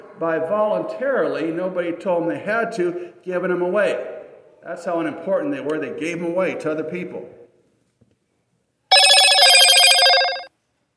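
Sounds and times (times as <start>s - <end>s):
speech: 0.2s - 7.4s
telephone bell ringing: 8.9s - 10.5s.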